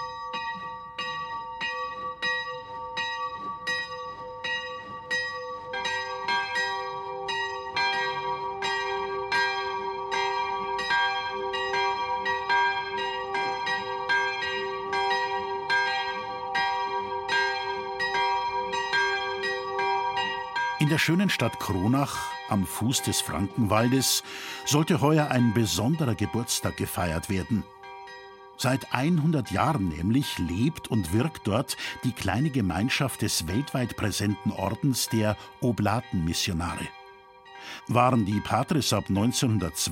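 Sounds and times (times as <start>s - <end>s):
church bells ringing the midday chime: 0.0s - 39.9s
speech: 20.9s - 27.8s, 28.6s - 37.0s, 37.6s - 39.9s.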